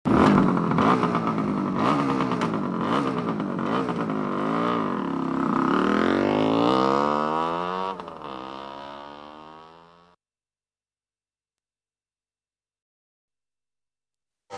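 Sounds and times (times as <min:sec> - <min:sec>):
motorcycle: 0:00.0 - 0:10.2.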